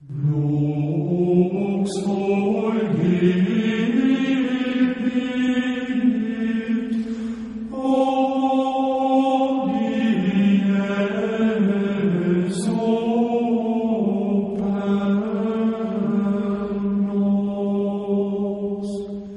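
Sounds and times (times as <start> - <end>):
gregorian chant: 0.0 - 19.3.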